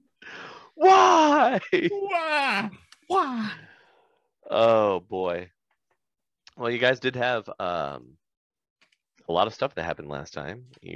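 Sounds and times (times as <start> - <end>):
person imitating an anguished scream: 0.8 - 3.6
speech: 1.5 - 3.7, 4.5 - 5.6, 6.6 - 8.2, 9.3 - 10.9.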